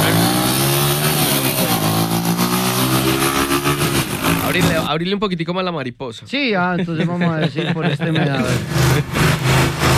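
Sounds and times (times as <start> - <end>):
sport motorcycle engine revving: 0.0 - 4.9, 8.3 - 9.9
speech: 4.6 - 9.3
laughter: 6.6 - 9.2.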